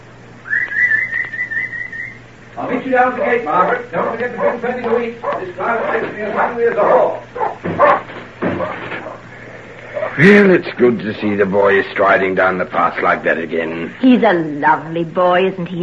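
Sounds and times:
sharp whistle: 0:00.4 - 0:02.2
speech: 0:02.6 - 0:08.0, 0:10.2 - 0:15.8
dogs barking and yipping: 0:03.1 - 0:09.3, 0:09.9 - 0:10.2.

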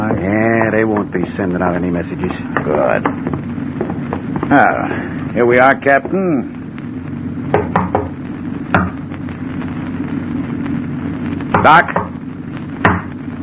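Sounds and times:
steady low mechanical hum: 0:00.0 - 0:13.4
speech: 0:01.0 - 0:03.7, 0:04.5 - 0:06.6, 0:11.6 - 0:12.0
sharp knocks on a locked door: 0:07.5 - 0:08.1.

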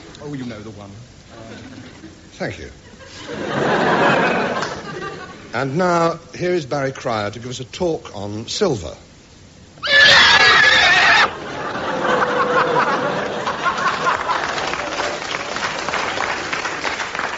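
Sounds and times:
speech: 0:00.2 - 0:04.8, 0:05.5 - 0:09.1
audience laughing: 0:02.8 - 0:05.5, 0:11.1 - 0:15.3
audience clapping: 0:04.5 - 0:05.0, 0:12.5 - 0:17.3
white horse whinnying: 0:09.8 - 0:11.3.

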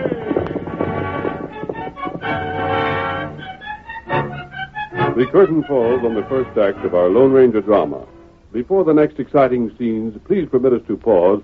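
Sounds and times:
horses galloping with clattering hoofbeats: 0:00.0 - 0:07.8
sustained tonal sounds: 0:00.0 - 0:08.9
speech: 0:05.2 - 0:11.4.

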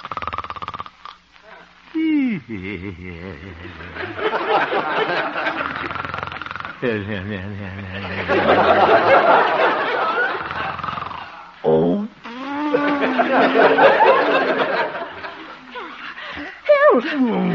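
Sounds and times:
man snoring gently and theatrically in his sleep: 0:00.0 - 0:01.2, 0:02.0 - 0:04.2, 0:05.5 - 0:08.3, 0:10.4 - 0:13.3
laughter: 0:01.5 - 0:06.0, 0:06.8 - 0:11.5, 0:12.7 - 0:16.5
man murmuring contentedly: 0:01.9 - 0:04.4, 0:06.7 - 0:09.1, 0:11.6 - 0:14.0, 0:17.0 - 0:17.5
speech: 0:02.4 - 0:06.0, 0:06.8 - 0:09.9, 0:17.0 - 0:17.5.

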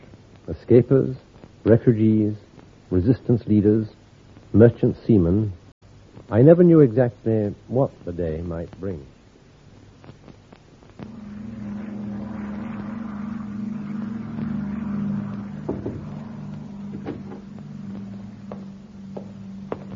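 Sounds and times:
speech: 0:00.5 - 0:05.6, 0:06.3 - 0:09.2
arriving propeller aircraft engine droning: 0:11.0 - 0:19.9
sharp clicks and knocks: 0:16.9 - 0:18.6.

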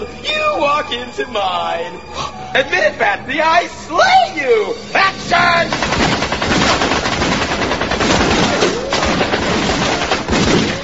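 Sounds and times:
speech: 0:00.8 - 0:05.8
guns firing blanks in automatic bursts during a filmed action scene: 0:05.7 - 0:10.8.

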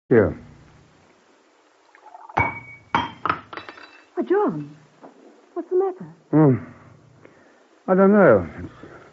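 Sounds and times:
speech: 0:00.1 - 0:00.4, 0:04.2 - 0:04.8, 0:05.6 - 0:06.8, 0:07.9 - 0:08.8
drinking glass dropped on a hard surface clinking: 0:02.1 - 0:04.8.

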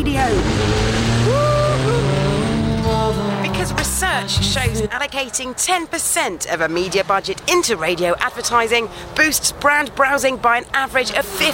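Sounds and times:
speech: 0:00.0 - 0:00.8, 0:03.6 - 0:11.5
powerful turbocharged muscle car engine revving and idling: 0:00.0 - 0:11.5.

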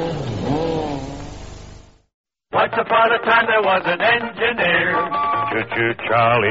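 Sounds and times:
Skoda Super Estel car engine revving: 0:00.0 - 0:02.0
speech: 0:02.7 - 0:06.4.

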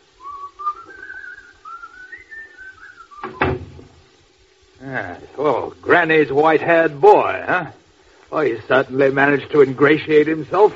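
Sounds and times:
person whistling a lilting tune: 0:00.2 - 0:03.6
solid door thump as people leave: 0:03.2 - 0:04.0
speech: 0:04.8 - 0:10.7.

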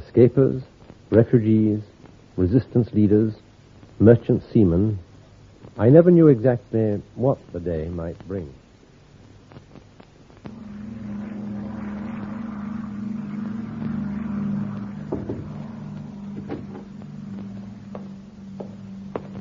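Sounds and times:
speech: 0:00.2 - 0:03.4, 0:04.0 - 0:05.0, 0:05.7 - 0:08.6
propeller plane engines droning: 0:10.5 - 0:19.3.

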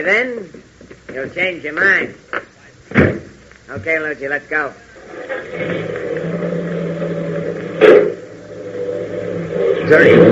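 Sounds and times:
speech: 0:00.0 - 0:06.1, 0:09.9 - 0:10.3
car engine droning as the vehicle pulls away: 0:05.0 - 0:10.3.

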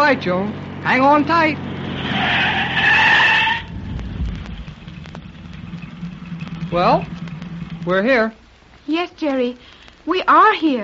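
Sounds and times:
car tires screeching while skidding across a narrow road: 0:00.0 - 0:08.2
low rumbling wash: 0:00.0 - 0:10.1
speech: 0:00.1 - 0:02.8, 0:06.7 - 0:07.2, 0:07.8 - 0:10.8
faint clicks of car coming to rest: 0:03.6 - 0:10.1.

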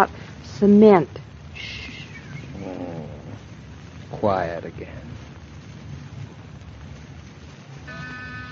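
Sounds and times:
speech: 0:00.0 - 0:01.8, 0:04.2 - 0:05.2
cat purring loudly: 0:02.5 - 0:03.4.

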